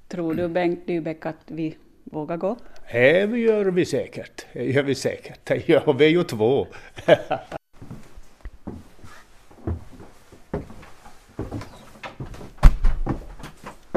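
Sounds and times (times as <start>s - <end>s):
speech: 0.2s - 7.6s
laughter: 6.7s - 7.6s
shuffling: 7.4s - 13.9s
door shutting with a solid thump: 11.7s - 13.9s.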